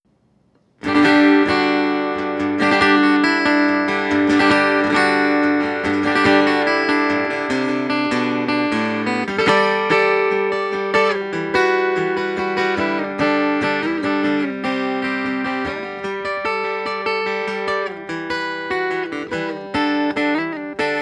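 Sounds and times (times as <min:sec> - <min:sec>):
Yamaha FGX5 guitar: 0:00.1 - 0:21.0.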